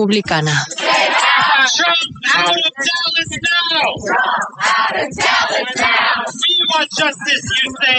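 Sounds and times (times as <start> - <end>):
speech: 0.0 - 0.8, 1.6 - 7.9
large crowd of protesters chanting slogans: 0.6 - 6.5.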